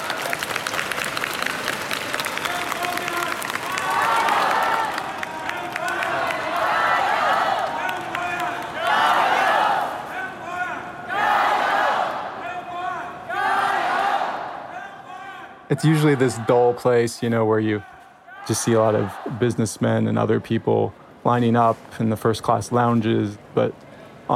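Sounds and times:
crowd applause in a big indoor hall: 0:00.0 - 0:09.4
large crowd cheering in airport arrivals hall: 0:00.0 - 0:19.7
speech: 0:15.7 - 0:24.3.

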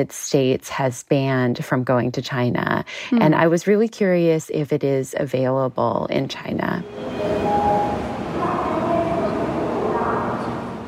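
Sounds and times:
speech: 0:00.0 - 0:07.3
train in China rolling along rails: 0:06.5 - 0:10.8
indistinct voices murmuring: 0:07.2 - 0:10.8.

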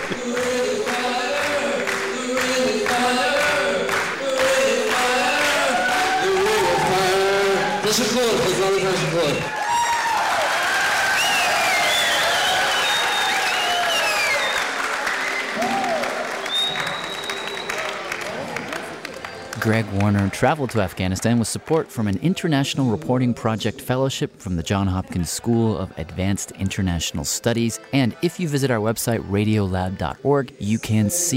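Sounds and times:
large concert crowd cheering with whoops and shouts: 0:00.0 - 0:22.1
speech: 0:07.9 - 0:09.6, 0:19.7 - 0:31.3.

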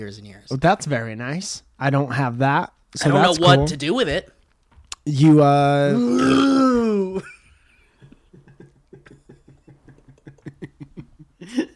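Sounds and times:
speech: 0:00.0 - 0:04.4, 0:05.0 - 0:07.3
loud deep burp: 0:05.9 - 0:07.2
laughter: 0:07.0 - 0:11.7.

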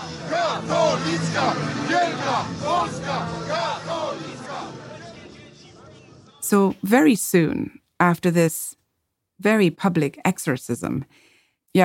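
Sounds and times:
large protest crowd chanting in unison: 0:00.0 - 0:06.5
murmur of many voices: 0:00.0 - 0:06.5
speech: 0:00.6 - 0:03.8, 0:06.5 - 0:08.8, 0:09.4 - 0:11.8.

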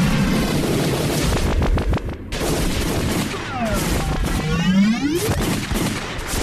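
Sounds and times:
sci-fi blaster shots fired in a fight: 0:00.0 - 0:06.4.

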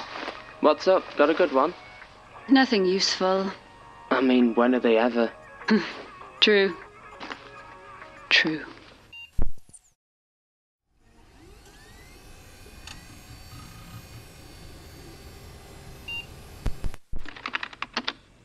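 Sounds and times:
speech: 0:00.6 - 0:01.8, 0:02.5 - 0:06.8, 0:08.3 - 0:08.8
mechanical drone: 0:11.0 - 0:17.0
typing on a computer keyboard: 0:17.3 - 0:18.2.

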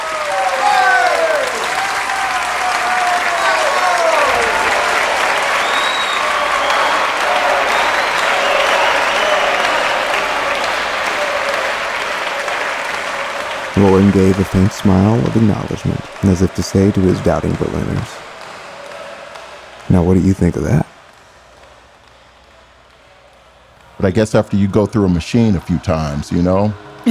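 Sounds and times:
whoops and cheers: 0:00.0 - 0:19.6
large crowd applauding loudly: 0:00.0 - 0:27.0
speech: 0:14.0 - 0:18.2, 0:19.9 - 0:20.9, 0:24.0 - 0:27.0.

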